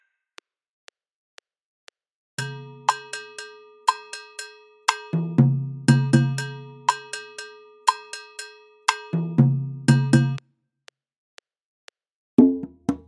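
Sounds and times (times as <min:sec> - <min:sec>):
Latin American pilon rhythm: 0:02.4 - 0:10.4, 0:12.4 - 0:13.0.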